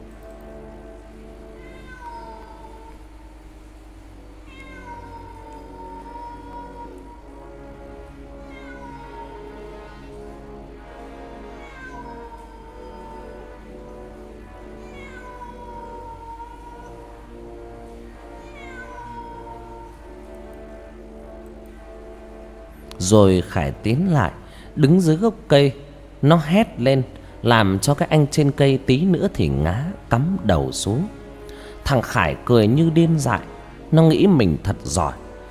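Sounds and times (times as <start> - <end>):
cat meowing eerily: 1.6 - 3.0, 4.4 - 7.2, 8.4 - 10.1, 11.5 - 13.6, 14.6 - 17.0, 18.4 - 20.0
speech: 23.0 - 31.2, 31.8 - 35.2.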